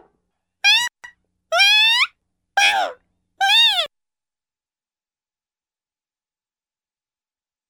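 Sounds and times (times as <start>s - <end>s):
cartoon trombone brass vocalisations: 0.7s - 3.9s.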